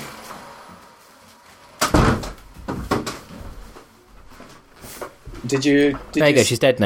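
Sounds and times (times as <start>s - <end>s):
door slamming shut: 1.8s - 3.1s
speech: 5.5s - 6.8s.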